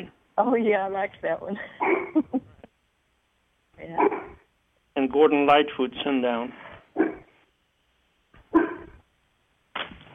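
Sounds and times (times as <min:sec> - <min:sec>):
speech: 0:00.0 - 0:02.5, 0:03.8 - 0:04.4, 0:05.0 - 0:07.2
dog barking: 0:01.8 - 0:02.2, 0:04.0 - 0:04.5, 0:06.9 - 0:07.4, 0:08.4 - 0:09.0.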